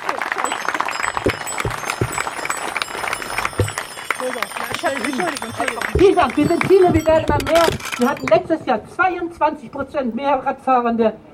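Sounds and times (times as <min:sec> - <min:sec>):
crowd clapping outdoors at a street rally: 0:00.0 - 0:08.3
speech: 0:04.8 - 0:11.3.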